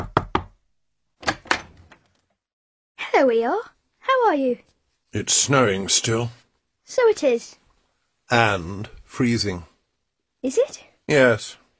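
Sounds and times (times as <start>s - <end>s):
knocking on a door: 0.0s - 0.6s
speech: 3.2s - 7.6s, 8.3s - 9.7s, 10.4s - 11.6s.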